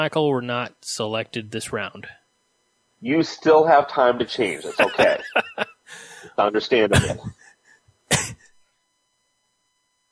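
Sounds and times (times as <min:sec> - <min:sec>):
speech: 0:00.0 - 0:02.2, 0:03.0 - 0:07.4
laughter: 0:04.5 - 0:05.8, 0:06.9 - 0:07.5
sharp harsh cough: 0:06.9 - 0:07.4, 0:08.1 - 0:08.5.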